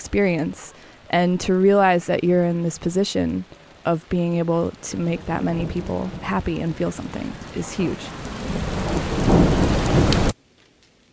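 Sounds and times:
speech: 0.0s - 9.2s
heavy rain downpour: 0.0s - 10.4s
deep thunderous rumble: 4.3s - 10.4s.

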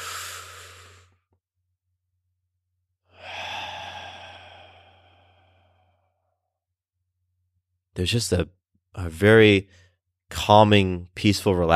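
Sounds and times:
deep breath drawn slowly in through the lungs: 0.0s - 1.2s, 3.1s - 6.4s
speech: 8.0s - 11.7s.

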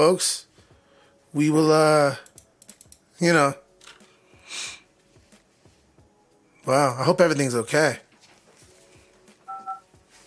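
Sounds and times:
speech: 0.0s - 0.5s, 1.3s - 2.3s, 3.2s - 3.6s, 6.6s - 8.0s
door sensor alarm beeping: 9.5s - 9.8s.

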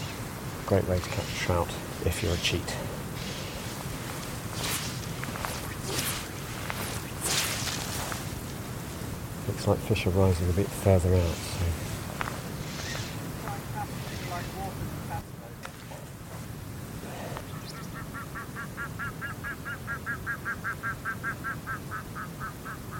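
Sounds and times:
unusual bird call, possibly a grouse: 0.0s - 8.4s, 12.2s - 16.1s, 17.1s - 22.9s
speech: 0.7s - 3.0s, 9.5s - 11.7s.

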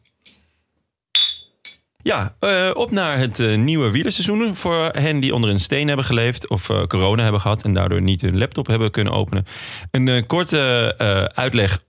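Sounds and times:
glasses clinking together in a toast: 1.2s - 1.9s
speech: 2.0s - 11.8s.

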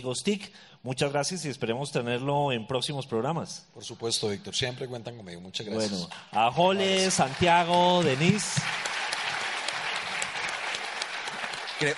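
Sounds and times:
speech: 0.0s - 9.0s
audience applause: 6.6s - 11.9s.

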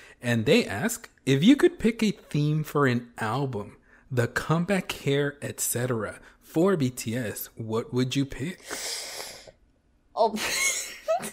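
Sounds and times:
speech: 0.2s - 9.2s, 10.2s - 11.3s
person gasping: 8.6s - 9.6s.

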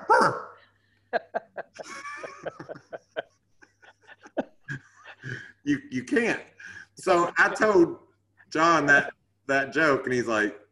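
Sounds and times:
man imitating a barking dog: 0.0s - 0.6s
laughter: 1.1s - 5.6s, 7.0s - 7.9s
speech: 5.7s - 10.6s.

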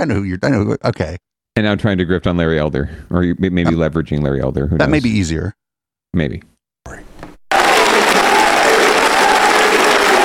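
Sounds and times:
speech: 0.0s - 7.1s
packed crowd applauding in a church: 7.5s - 10.2s.

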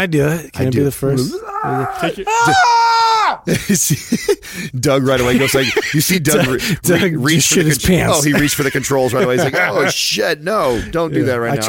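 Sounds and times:
speech: 0.0s - 11.6s
person screaming at top of lungs: 1.3s - 3.5s
laughter: 1.8s - 10.2s.

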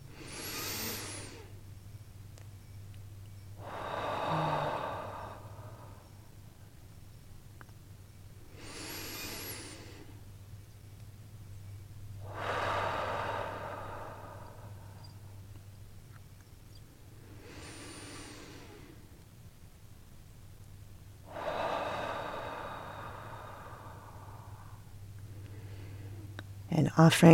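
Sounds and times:
slow deep breaths taken in a releasing exercise: 0.0s - 1.8s, 3.4s - 6.9s, 8.2s - 16.0s, 16.9s - 19.6s, 21.2s - 26.7s
steady low electrical hum: 0.0s - 27.3s
speech: 26.8s - 27.3s.

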